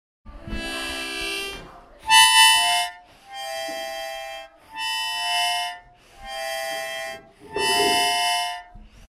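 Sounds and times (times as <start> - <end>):
harmonica: 0.5 - 9.0.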